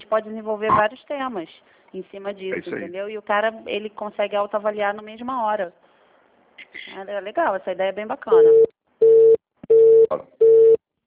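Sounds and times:
speech: 0:00.1 - 0:05.8, 0:06.7 - 0:08.7, 0:10.1 - 0:10.4
telephone busy signal after a dropped call: 0:08.4 - 0:11.0.

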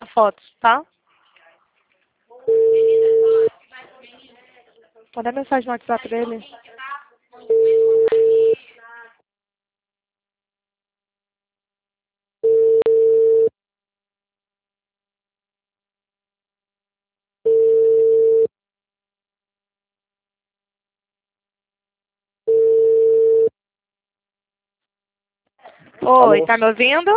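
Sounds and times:
speech: 0:00.2 - 0:01.0, 0:05.2 - 0:06.7, 0:26.0 - 0:27.1
telephone busy tone after a dropped phone call: 0:02.5 - 0:03.5, 0:07.5 - 0:08.6, 0:12.4 - 0:13.5, 0:17.5 - 0:18.5, 0:22.5 - 0:23.5.

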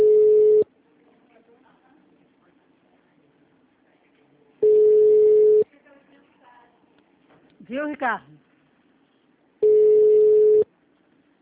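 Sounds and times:
telephone ringing tone as a call is placed: 0:00.0 - 0:00.7, 0:04.6 - 0:05.6, 0:09.6 - 0:10.7
speech: 0:07.8 - 0:08.4.

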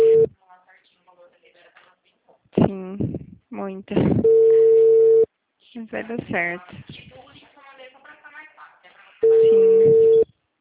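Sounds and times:
telephone busy signal on a call that will not go through: 0:00.0 - 0:00.3, 0:04.2 - 0:05.3, 0:09.2 - 0:10.3
speech: 0:03.6 - 0:04.4, 0:05.8 - 0:07.2.

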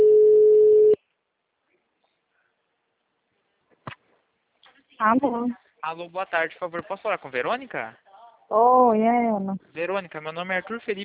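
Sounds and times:
phone ringback tone on a recorded outgoing call: 0:00.0 - 0:01.0
speech: 0:05.0 - 0:11.0.

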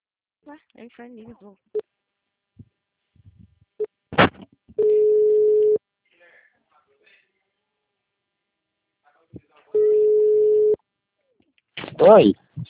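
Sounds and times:
speech: 0:00.5 - 0:01.9, 0:12.0 - 0:12.6
telephone busy tone after a dropped call: 0:04.8 - 0:05.8, 0:09.8 - 0:10.8.

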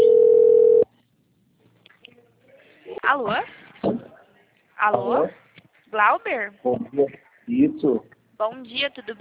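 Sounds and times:
telephone dial tone while placing a call: 0:00.0 - 0:00.8
speech: 0:03.1 - 0:03.6, 0:04.8 - 0:09.1.

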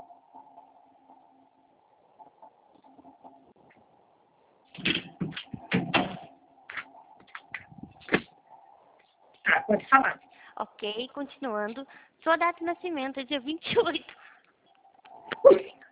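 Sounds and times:
steady low hum: 0:00.0 - 0:13.2
door knocks and rattles while being closed: 0:04.8 - 0:06.2
speech: 0:09.7 - 0:14.2.

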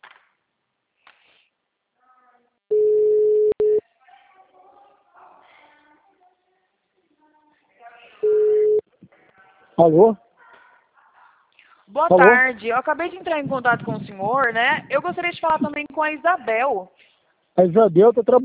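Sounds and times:
mid-pitched electronic telephone ringback tone: 0:02.7 - 0:03.8, 0:08.2 - 0:08.8
speech: 0:09.8 - 0:10.2, 0:12.0 - 0:17.0, 0:17.6 - 0:18.4.

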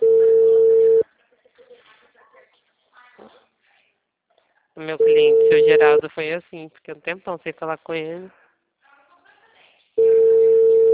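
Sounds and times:
ringback tone on an outgoing phone call: 0:00.0 - 0:01.0, 0:05.0 - 0:06.1, 0:10.0 - 0:10.9
speech: 0:04.8 - 0:08.4.

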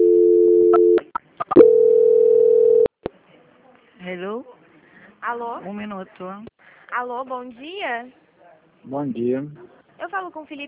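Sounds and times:
telephone line tone during bank call transfer: 0:00.0 - 0:02.9
speech: 0:05.3 - 0:08.2, 0:08.8 - 0:10.6.

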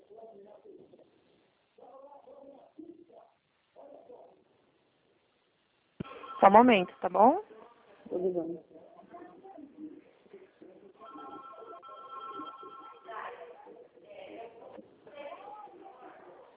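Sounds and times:
telephones ringing with electronic trilling tones: 0:06.0 - 0:07.1, 0:11.0 - 0:13.2
speech: 0:06.4 - 0:07.5, 0:08.1 - 0:08.7.

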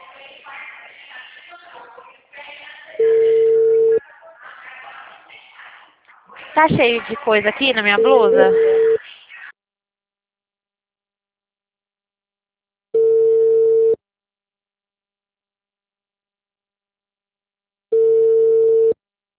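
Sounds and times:
ringback tone of an outgoing telephone call: 0:03.0 - 0:04.0, 0:07.8 - 0:09.0, 0:13.0 - 0:14.0, 0:18.0 - 0:19.0
speech: 0:06.6 - 0:08.7.

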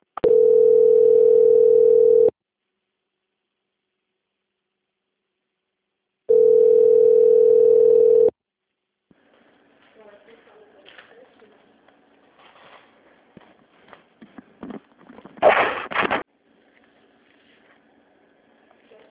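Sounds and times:
telephone line tones while a bank call is transferred: 0:00.2 - 0:02.3, 0:06.3 - 0:08.3.

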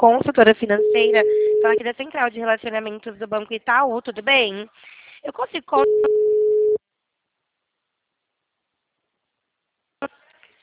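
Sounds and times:
speech: 0:00.0 - 0:06.3
telephone ringback tone on an outgoing call: 0:00.8 - 0:01.8, 0:05.8 - 0:06.8.

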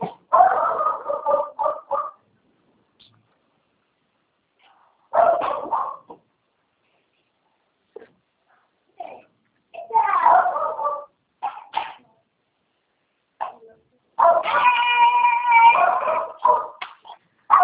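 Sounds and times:
neighbour's dog barking in yaps and clusters: 0:00.0 - 0:02.2, 0:05.1 - 0:06.2, 0:10.1 - 0:11.9, 0:14.2 - 0:16.8, 0:17.5 - 0:17.6.

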